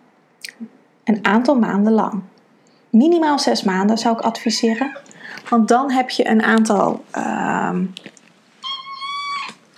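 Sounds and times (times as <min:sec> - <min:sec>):
speech: 0:00.6 - 0:02.3, 0:02.9 - 0:08.2
pet cat meowing: 0:08.6 - 0:09.6.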